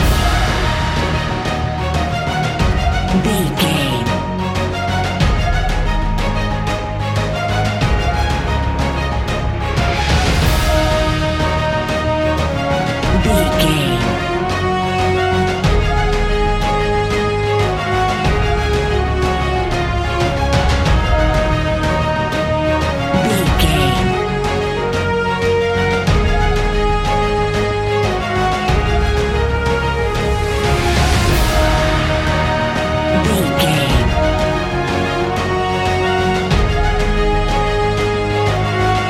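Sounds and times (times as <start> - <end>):
epic cinematic music loop: 0.0 - 39.0.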